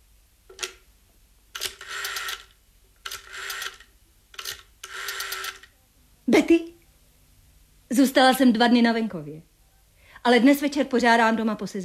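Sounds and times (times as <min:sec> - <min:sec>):
rotary telephone being dialed: 0:01.6 - 0:05.7
speech: 0:06.3 - 0:06.8, 0:07.9 - 0:09.5, 0:10.2 - 0:11.8.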